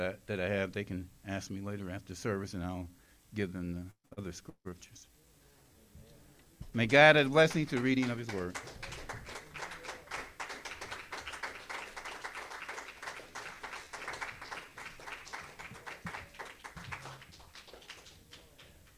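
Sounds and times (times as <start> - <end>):
speech: 0.0 - 5.2, 6.8 - 9.0
crowd clapping: 6.8 - 18.9.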